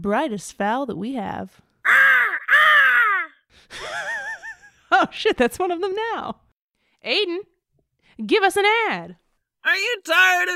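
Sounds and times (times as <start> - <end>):
speech: 0.0 - 2.1, 5.0 - 6.4, 7.0 - 7.5, 8.2 - 10.5
crow cawing: 1.8 - 3.4.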